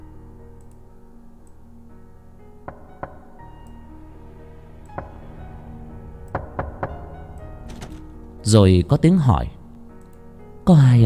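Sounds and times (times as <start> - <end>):
knocking on a door at night: 2.7 - 3.3, 6.4 - 8.1
speech: 8.5 - 9.6, 10.7 - 11.0.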